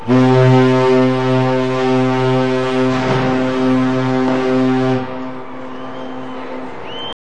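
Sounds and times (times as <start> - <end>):
aircraft carrier ship's whistle blast: 0.0 - 7.2.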